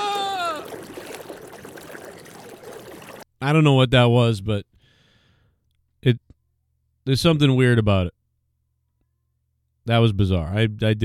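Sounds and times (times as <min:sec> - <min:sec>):
running water trickling and splashing: 0:00.0 - 0:03.3
speech: 0:03.4 - 0:04.7, 0:07.1 - 0:08.2, 0:09.8 - 0:11.0.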